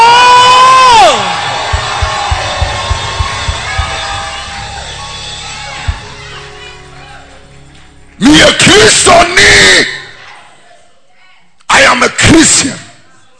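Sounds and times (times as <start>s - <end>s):
congregation screaming and cheering: 0.0s - 11.1s
steady rhythmic low thumps: 1.2s - 8.2s.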